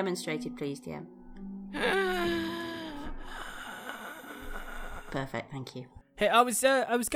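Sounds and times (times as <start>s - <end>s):
speech: 0.0s - 2.4s, 5.1s - 7.1s
person imitating a heavy raspy wheezing breath: 1.7s - 5.3s.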